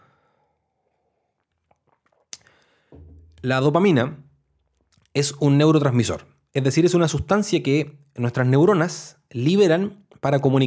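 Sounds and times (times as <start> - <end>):
person sipping and slurping coffee: 1.4 - 2.7
speech: 3.4 - 4.2, 5.2 - 10.6.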